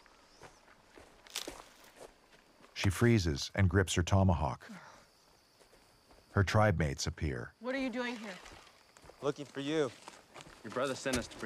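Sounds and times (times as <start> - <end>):
footsteps hiking through a forest: 0.0 - 2.8, 5.0 - 6.4, 8.4 - 11.4
speech: 2.8 - 4.9, 6.4 - 11.4.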